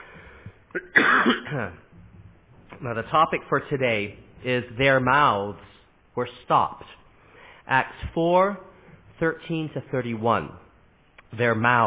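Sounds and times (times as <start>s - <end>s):
person coughing with a rough hack: 0.7s - 1.8s
speech: 0.7s - 1.8s, 2.8s - 7.0s, 7.7s - 10.6s, 11.3s - 11.8s
person clearing throat with a raspy rumble: 0.7s - 1.9s.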